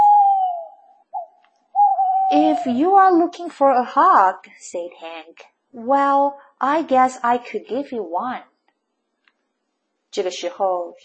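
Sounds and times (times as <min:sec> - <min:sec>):
owl hooting: 0:00.0 - 0:02.9
speech: 0:02.3 - 0:08.5, 0:10.1 - 0:11.0.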